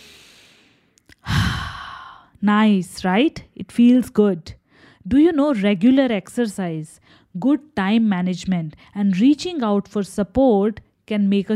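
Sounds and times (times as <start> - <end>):
deep breath: 0.0 - 2.3
speech: 2.4 - 11.5.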